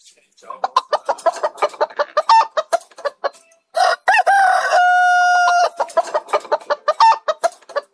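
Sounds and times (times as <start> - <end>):
flock of chickens clucking while being fed: 0.0 - 7.9
rooster crowing: 3.8 - 5.9.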